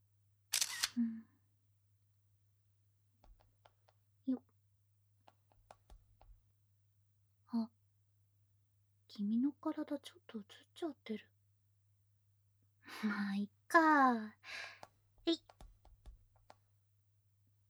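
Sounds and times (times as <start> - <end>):
camera shutter clicks photographing a drink float and a lit-up pool: 0.6 - 1.0
speech: 9.2 - 11.4, 12.9 - 15.6.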